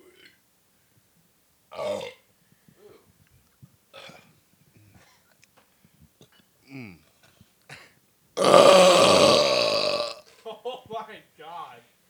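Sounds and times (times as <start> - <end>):
loud long burp: 1.7 - 2.2, 8.4 - 10.3
casual talk: 10.5 - 11.9.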